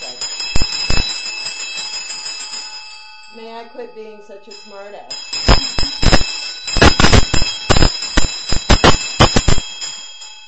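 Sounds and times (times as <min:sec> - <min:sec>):
small bell ringing: 0:00.0 - 0:10.4
speech: 0:03.6 - 0:05.8.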